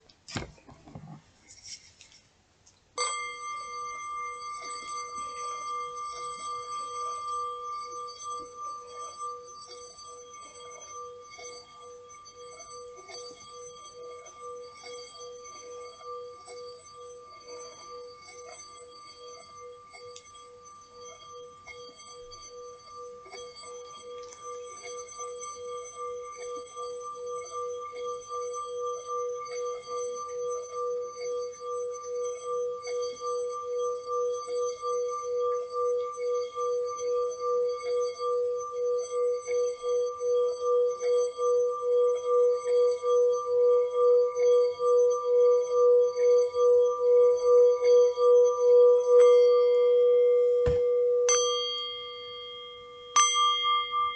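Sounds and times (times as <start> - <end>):
singing bowl: 3.0 - 54.1.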